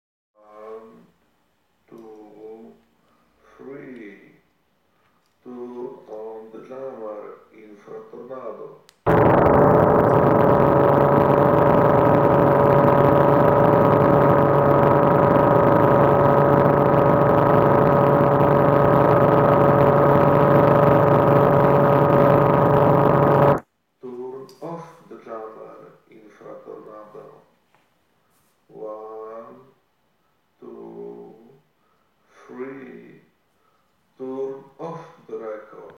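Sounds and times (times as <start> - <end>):
audio jammer noise: 9.1 - 23.6.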